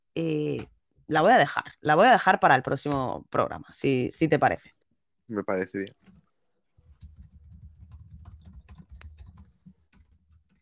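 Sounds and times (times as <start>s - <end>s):
speech: 0.2s - 6.1s
computer keyboard typing: 6.0s - 10.6s.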